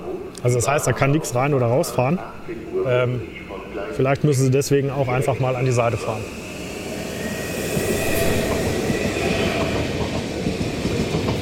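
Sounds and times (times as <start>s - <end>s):
speech: 0.4s - 6.4s
Twindexx double-deck passenger train rumbling past: 4.7s - 11.3s
faint high train wheel squeal: 5.1s - 10.9s.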